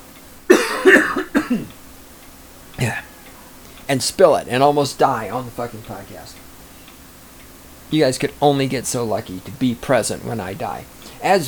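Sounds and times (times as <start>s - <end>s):
harsh raspy coughing fit: 0.5s - 1.8s, 2.8s - 3.2s
speech: 1.5s - 1.8s, 2.8s - 3.0s, 3.9s - 6.5s, 7.9s - 11.4s.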